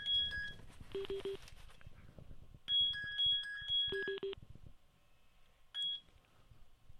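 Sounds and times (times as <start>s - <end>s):
incoming phone call electronic beeps: 0.0s - 1.4s, 2.7s - 4.4s, 5.8s - 6.1s.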